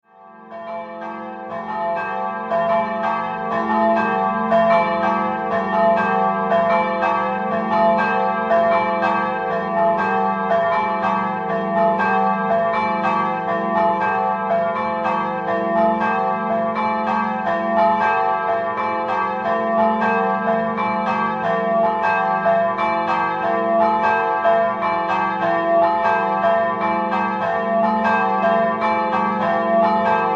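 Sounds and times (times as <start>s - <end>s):
bells ringing: 0.6s - 30.3s.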